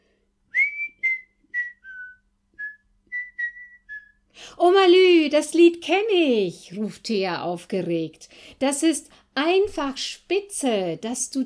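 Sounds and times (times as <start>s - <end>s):
person whistling a cheerful song melody: 0.5s - 4.2s
speech: 4.5s - 11.4s.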